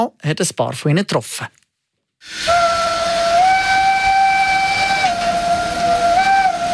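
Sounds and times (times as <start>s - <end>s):
speech: 0.0s - 1.6s, 2.2s - 2.8s
steam locomotive whistle blowing: 2.2s - 6.7s.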